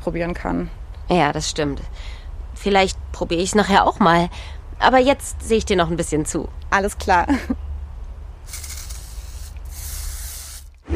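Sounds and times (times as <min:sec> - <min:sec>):
speech: 0:00.0 - 0:07.6
low rumbling background: 0:00.0 - 0:10.9
spray paint can hissing as a woman sprays graffiti lettering: 0:08.5 - 0:10.8.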